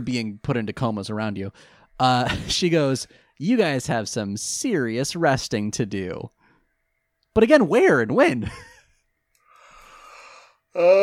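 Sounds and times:
speech: 0.0s - 6.4s, 7.4s - 8.7s, 10.8s - 11.0s
drawn-out breathy yawn: 9.8s - 11.0s.

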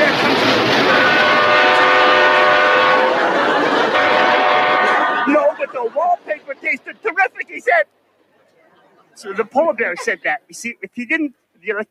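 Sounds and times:
train horn blaring: 0.0s - 7.1s
train cars rolling along the track: 0.0s - 11.0s
laughter: 2.9s - 7.8s, 8.5s - 10.5s
speech: 9.2s - 11.9s.

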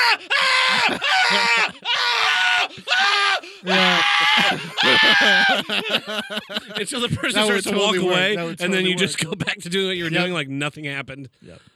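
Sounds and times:
person screaming loudly with strained drawn-out cries: 0.0s - 5.7s
laughter: 0.0s - 10.3s
speech: 0.2s - 1.9s, 5.0s - 11.7s.

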